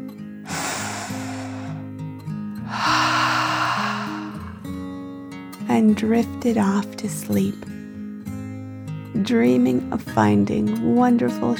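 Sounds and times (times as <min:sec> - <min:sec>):
slow deep breath in and out during a calming bedtime meditation: 0:00.5 - 0:01.9, 0:02.6 - 0:05.0
speech: 0:05.7 - 0:07.7, 0:09.2 - 0:11.5.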